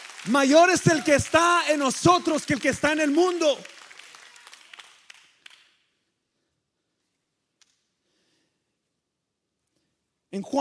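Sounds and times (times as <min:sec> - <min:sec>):
crowd applauding: 0:00.0 - 0:05.8
speech: 0:00.2 - 0:03.8, 0:10.4 - 0:10.5.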